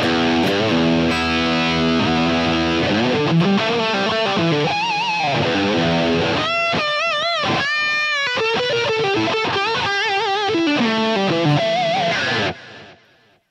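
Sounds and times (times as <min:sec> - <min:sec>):
overdriven electric guitar through tube screamer-style pedal into crunchy amp: 0:00.0 - 0:13.4.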